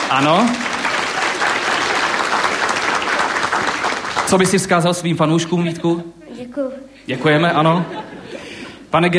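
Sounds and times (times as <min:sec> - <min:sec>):
audience applauding and cheering: 0:00.0 - 0:04.7
speech: 0:00.1 - 0:00.7, 0:04.3 - 0:09.1
laughter: 0:07.1 - 0:08.8.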